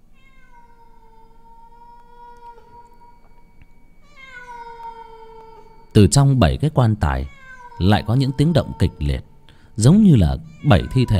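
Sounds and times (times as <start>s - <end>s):
faint steady hiss: 0.0s - 11.1s
cat meowing on a roof: 0.1s - 3.2s, 4.0s - 6.0s, 7.1s - 9.4s, 10.2s - 11.1s
speech: 6.0s - 11.1s.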